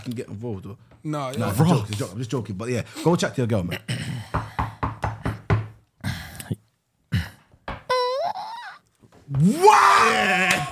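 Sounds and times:
speech: 0.0s - 4.1s, 9.4s - 10.7s
firm knocking on a door: 4.2s - 5.8s.

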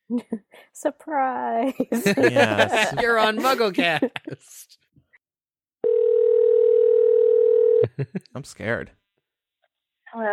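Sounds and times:
speech: 0.1s - 4.8s, 8.0s - 9.0s, 10.1s - 10.3s
laughter: 1.6s - 4.6s, 7.8s - 8.4s
telephone dial tone while placing a call: 5.8s - 7.8s.

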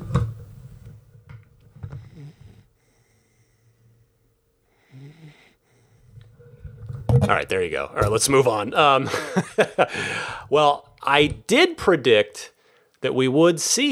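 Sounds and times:
puppy snoring: 0.0s - 8.4s
speech: 7.3s - 13.9s
laughter: 8.0s - 10.8s.

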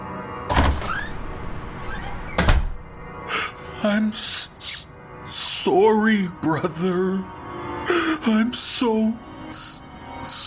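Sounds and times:
back door bursting open: 0.5s - 3.2s
speech: 3.8s - 4.5s, 5.6s - 10.4s.

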